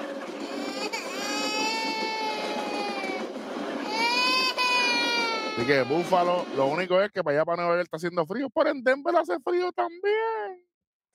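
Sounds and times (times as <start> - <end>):
baby wailing: 0.4 - 6.9
speech: 5.6 - 10.7.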